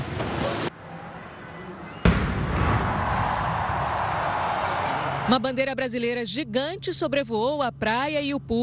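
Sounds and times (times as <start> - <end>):
outdoor noise: 0.0 - 8.6
cannon blast from an artillery salute: 2.0 - 4.3
speech: 5.3 - 8.6.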